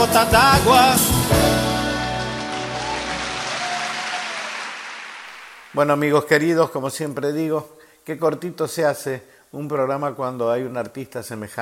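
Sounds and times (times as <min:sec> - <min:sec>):
speech: 0:00.0 - 0:01.4, 0:05.8 - 0:11.6
Brazilian song playing: 0:00.0 - 0:04.7.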